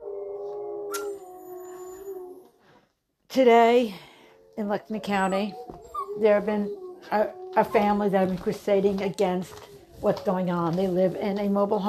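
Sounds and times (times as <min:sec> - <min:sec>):
dogs howling and whimpering: 0:00.0 - 0:02.6, 0:04.4 - 0:08.4
dog yip: 0:00.9 - 0:01.2
speech: 0:03.3 - 0:11.8.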